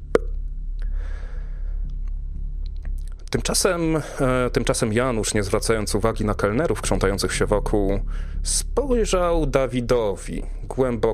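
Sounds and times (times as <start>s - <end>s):
mouth-made pop imitating a wine cork being pulled: 0.0s - 0.4s
quiet hum: 0.0s - 11.1s
soft breathy noise: 0.8s - 1.9s, 3.9s - 4.4s, 7.9s - 8.8s
speech: 3.3s - 11.1s.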